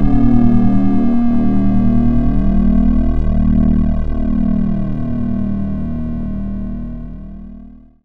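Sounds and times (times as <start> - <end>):
long retro cinematic sound: 0.0 - 6.2.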